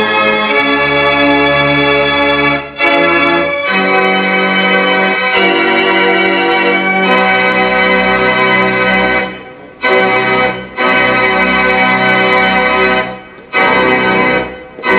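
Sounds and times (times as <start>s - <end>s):
organ playing: 0.0s - 14.9s.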